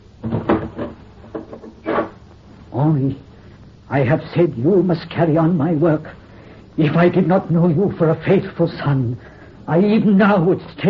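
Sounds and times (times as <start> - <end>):
wooden door closing with clunks and rattles: 0.2 - 2.2
speech: 2.9 - 3.3, 3.9 - 6.2, 6.8 - 10.8.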